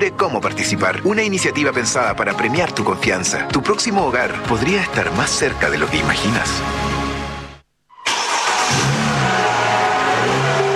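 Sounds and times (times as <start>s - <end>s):
speech: 0.0s - 6.9s
car engine revving with a strong sustained growl: 8.1s - 10.7s.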